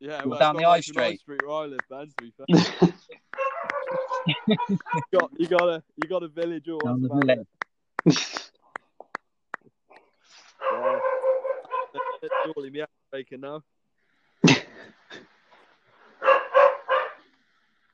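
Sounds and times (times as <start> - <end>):
speech: 0.0 - 3.2, 4.2 - 8.6, 12.2 - 13.7
laughter: 0.1 - 6.4, 12.0 - 12.7
dog barking and whining: 3.4 - 4.4, 10.6 - 12.6, 16.2 - 17.2.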